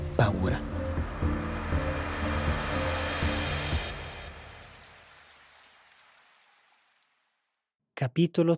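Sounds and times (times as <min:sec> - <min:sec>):
heavy rain: 0:00.0 - 0:07.0
speech: 0:00.2 - 0:01.4, 0:08.0 - 0:08.5
low droning hum: 0:00.6 - 0:05.0.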